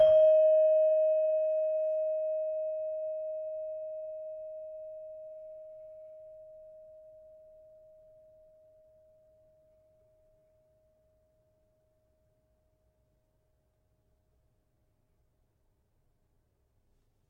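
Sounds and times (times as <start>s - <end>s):
tuned gamelan saron playing D sharp: 0.0s - 6.2s.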